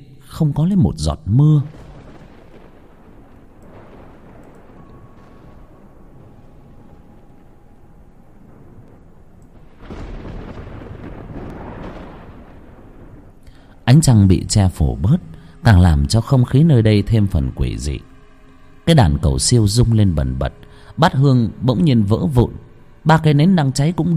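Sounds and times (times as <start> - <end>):
thunder rumbling in a storm with no rain: 0.0 - 24.1
speech: 0.4 - 1.8, 14.0 - 18.1, 18.9 - 24.1.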